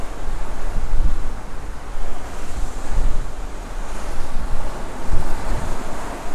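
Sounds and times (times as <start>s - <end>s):
Atlantic Ocean waves seen from a ship deck: 0.0s - 6.3s
wind on a ship deck buffeting the microphone: 0.0s - 6.3s.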